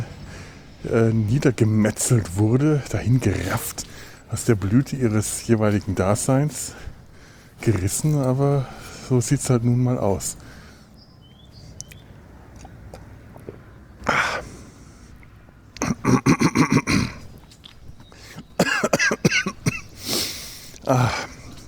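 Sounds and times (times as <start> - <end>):
speech: 0.8 - 6.9, 7.6 - 10.5
person coughing after choking on something: 15.8 - 17.2, 18.6 - 20.0
throat clearing: 15.8 - 17.4, 18.6 - 20.0, 20.8 - 21.6.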